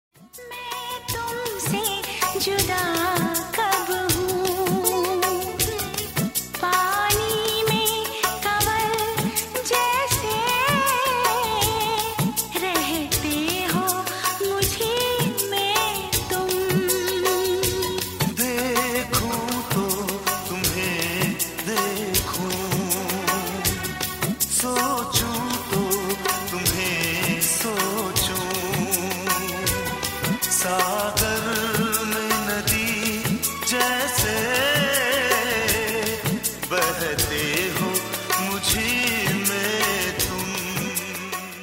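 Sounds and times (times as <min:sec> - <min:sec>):
old Hindi song: 0:00.2 - 0:41.6.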